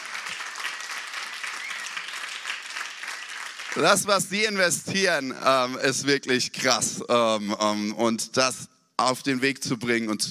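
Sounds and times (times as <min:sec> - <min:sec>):
congregation applause at a church service: 0:00.0 - 0:04.8
speech: 0:03.8 - 0:10.3.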